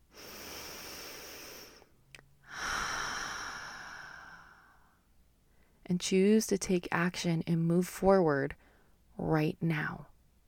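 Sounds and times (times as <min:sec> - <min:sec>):
deep breath: 0:00.0 - 0:05.8, 0:08.6 - 0:09.0
speech: 0:05.9 - 0:08.6, 0:09.2 - 0:10.1.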